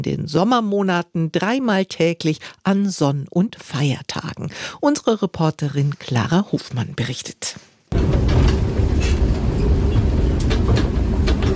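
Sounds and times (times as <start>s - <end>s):
speech: 0.0s - 8.2s
faint rattling and clicks: 7.9s - 11.5s
passenger train rumbling at a railway station: 7.9s - 11.5s.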